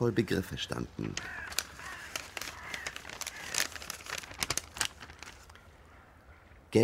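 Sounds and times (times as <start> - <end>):
speech: 0.0 - 1.6
paper crinkling and crumpling by hand: 1.2 - 5.6.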